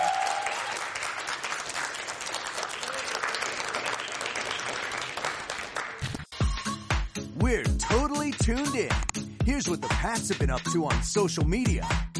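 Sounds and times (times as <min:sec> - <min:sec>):
audience round of applause: 0:00.0 - 0:06.2
speech: 0:07.5 - 0:12.1.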